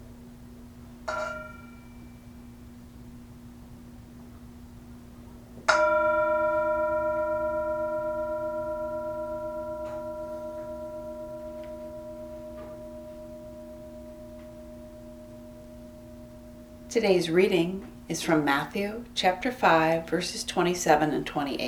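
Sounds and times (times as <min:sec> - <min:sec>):
Tibetan singing bowl struck as a mindfulness bell: 0:01.1 - 0:02.6, 0:05.7 - 0:18.0
speech: 0:16.9 - 0:21.6.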